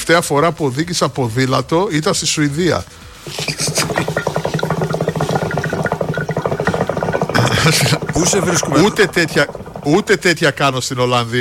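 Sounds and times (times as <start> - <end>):
speech: 0.1 - 4.2, 7.7 - 11.3
hookah bubbling: 3.0 - 11.3.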